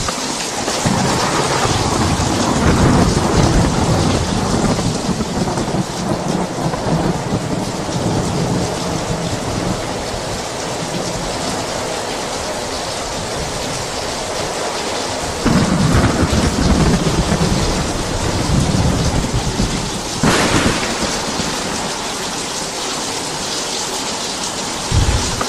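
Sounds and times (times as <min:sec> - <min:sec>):
sharp thunder crack: 0:00.0 - 0:09.8, 0:15.4 - 0:23.0, 0:24.9 - 0:25.4
deep rolling thunder: 0:00.0 - 0:11.6, 0:15.2 - 0:23.4, 0:24.8 - 0:25.4
heavy rain pouring down: 0:00.0 - 0:25.4.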